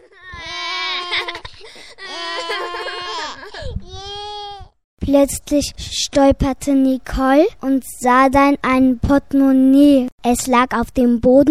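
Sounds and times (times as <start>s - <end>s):
children crying: 0.0s - 4.7s
speech: 5.1s - 11.4s.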